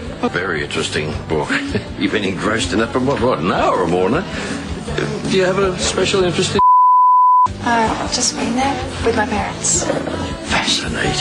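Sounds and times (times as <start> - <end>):
speech: 0.2 - 6.6, 7.6 - 11.2
censoring bleep: 6.6 - 7.6.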